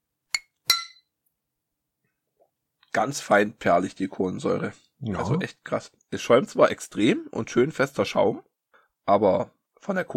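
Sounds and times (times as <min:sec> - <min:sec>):
glasses of Club-Mate clinking in a toast: 0:00.4 - 0:01.1
speech: 0:02.9 - 0:08.5, 0:09.1 - 0:10.1.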